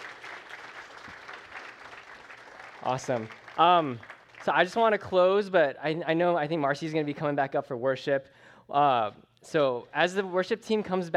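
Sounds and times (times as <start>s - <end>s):
audience applause at a worship gathering: 0.0s - 5.0s
speech: 2.8s - 11.1s.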